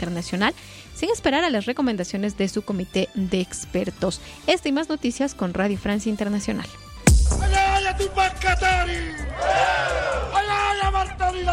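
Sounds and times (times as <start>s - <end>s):
speech: 0.0s - 6.8s, 7.4s - 11.5s
crowd of protesters shouting and yelling: 9.0s - 10.6s.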